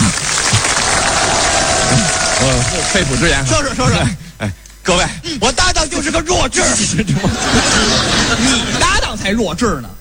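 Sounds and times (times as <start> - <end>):
applause at a banquet for someone invited to give a toast: 0.0 - 3.7
laughter: 0.7 - 4.3, 7.1 - 9.1
speech: 2.4 - 9.9.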